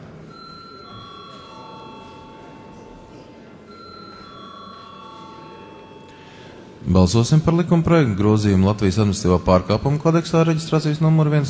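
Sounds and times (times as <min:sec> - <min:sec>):
low murmur of voices: 0:00.0 - 0:11.4
parliament voting call bell ringing: 0:00.3 - 0:06.8
speech: 0:06.8 - 0:11.4.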